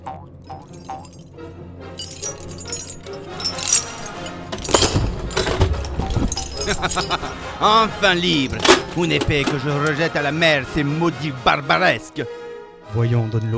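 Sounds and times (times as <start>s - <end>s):
keys jangling while unlocking a cell: 0.7s - 1.2s, 2.0s - 10.0s
speech: 6.8s - 13.5s.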